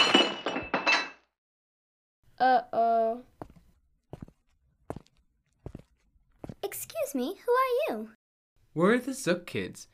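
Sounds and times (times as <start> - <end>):
glass vase shattering in a palace: 0.0 - 1.3
speech: 2.4 - 3.3, 7.0 - 8.2, 8.8 - 9.9.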